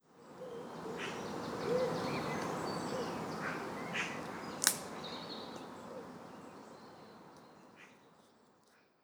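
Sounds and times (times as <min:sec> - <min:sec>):
birds: 0:00.1 - 0:08.4
branch snapping: 0:04.6 - 0:04.9.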